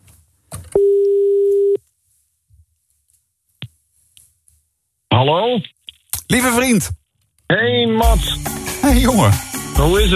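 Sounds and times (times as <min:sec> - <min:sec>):
outgoing telephone call ring tone: 0:00.8 - 0:01.8
speech: 0:05.2 - 0:10.1.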